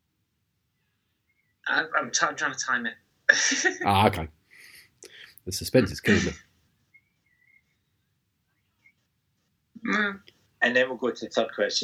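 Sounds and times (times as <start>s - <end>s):
speech: 1.7s - 4.4s, 5.5s - 6.5s, 9.9s - 11.8s
bird chirping on a chimney and roof: 6.9s - 9.0s.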